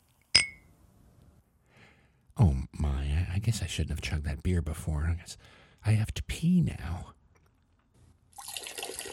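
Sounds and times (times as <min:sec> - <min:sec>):
crystal champagne flutes clinking in a toast: 0:00.4 - 0:00.7
speech: 0:03.4 - 0:07.2.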